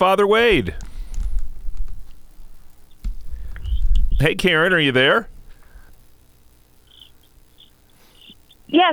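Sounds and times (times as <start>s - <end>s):
speech: 0.0s - 0.9s, 4.2s - 5.3s, 8.7s - 8.9s
steady hiss: 0.0s - 8.9s
crickets chirping: 2.7s - 4.6s, 5.5s - 8.9s.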